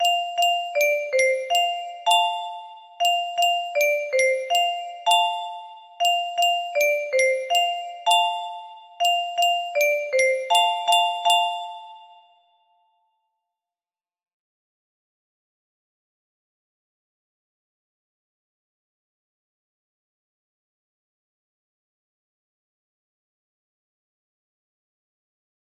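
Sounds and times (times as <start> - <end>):
slow melody: 0.0 - 12.7.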